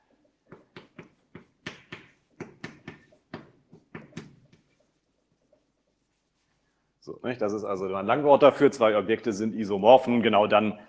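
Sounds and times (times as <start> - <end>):
taps and strokes writing an equals sign with a tilde on a board: 0.5 - 4.8
speech: 7.1 - 10.8.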